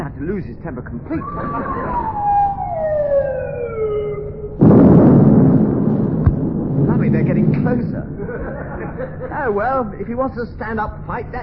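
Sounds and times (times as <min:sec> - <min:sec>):
speech: 0:00.2 - 0:03.0, 0:07.0 - 0:11.4
laughter: 0:01.1 - 0:02.3, 0:08.0 - 0:09.7
descending whistle of an incoming naval shell: 0:01.2 - 0:04.6
loud naval shell explosion: 0:04.5 - 0:09.0.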